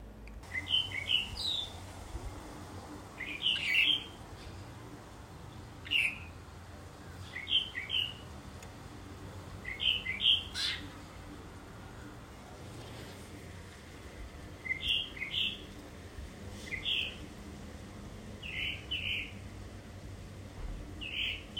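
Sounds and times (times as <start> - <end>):
tropical mockingbird singing: 0.5 - 1.8, 3.1 - 4.2, 5.8 - 6.4, 7.1 - 8.3, 9.6 - 11.2, 14.6 - 15.7, 16.7 - 17.2, 18.4 - 19.4, 21.0 - 21.5.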